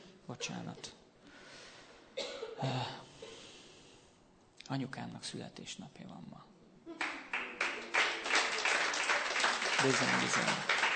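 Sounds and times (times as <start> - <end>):
speech: 0.3 - 1.0, 2.6 - 3.0, 4.7 - 6.5, 9.8 - 10.8
audience applause: 7.0 - 10.9.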